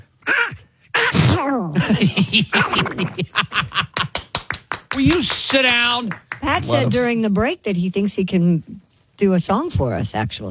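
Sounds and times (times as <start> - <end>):
man imitating a cartoon duck sneezing: 0.0 - 1.8
speech: 1.4 - 3.9, 5.0 - 10.5
laughter: 1.8 - 4.4, 5.0 - 7.0.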